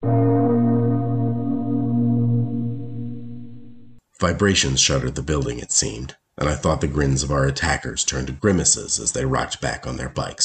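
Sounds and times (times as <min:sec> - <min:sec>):
loud resonant gong-like bell ring: 0:00.0 - 0:04.0
speech: 0:04.2 - 0:10.4.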